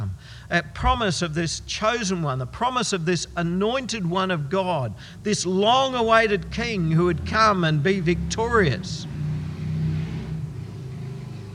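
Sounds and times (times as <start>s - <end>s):
speech: 0.5s - 9.1s
loud motorbike engine revving through gears into fourth gear: 8.0s - 11.5s.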